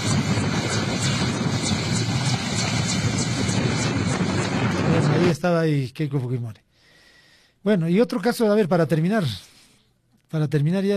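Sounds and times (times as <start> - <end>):
helicopter flying overhead with rotor chop: 0.0 - 5.4
speech: 5.4 - 6.6, 7.6 - 9.5, 10.3 - 10.9.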